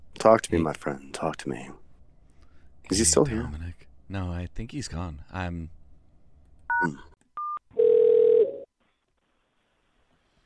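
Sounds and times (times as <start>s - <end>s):
speech: 0.2s - 1.8s, 2.9s - 5.8s, 6.8s - 7.1s
telephone line beeps and ringing tone: 7.4s - 8.7s.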